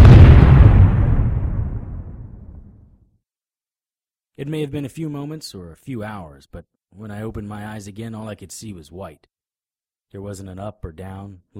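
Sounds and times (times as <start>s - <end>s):
stick of dynamite exploding in a heavy booming blast: 0.0s - 2.8s
speech: 4.4s - 9.3s, 10.1s - 11.5s.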